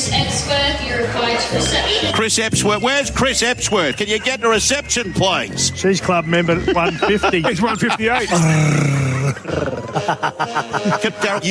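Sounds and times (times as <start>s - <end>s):
speech: 0.2s - 11.4s
laughter: 1.0s - 11.4s
throaty voiced sounds: 7.1s - 10.2s
low raspy growl: 8.2s - 10.0s.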